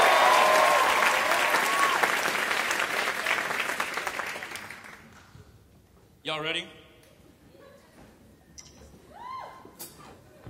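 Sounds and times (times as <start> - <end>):
audience clapping in dense sustained applause: 0.0 - 5.1
speech: 6.3 - 6.8.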